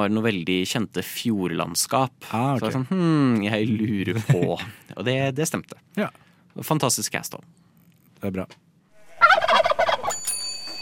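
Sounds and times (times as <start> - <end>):
speech: 0.0 - 7.6, 8.2 - 8.6
laughter: 3.6 - 4.8
turkey gobbling: 9.0 - 10.1.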